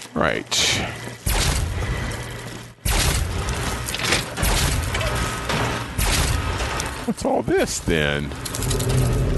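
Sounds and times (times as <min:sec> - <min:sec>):
speech: 0:00.1 - 0:01.2, 0:07.1 - 0:09.2
video game gunfire as a player shoots mole rats with a gun: 0:02.8 - 0:06.8.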